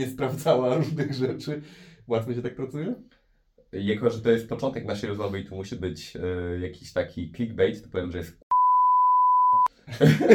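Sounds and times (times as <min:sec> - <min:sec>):
speech: 0:00.0 - 0:08.4, 0:09.6 - 0:10.3
censor bleep: 0:08.5 - 0:09.7
laughter: 0:09.9 - 0:10.3.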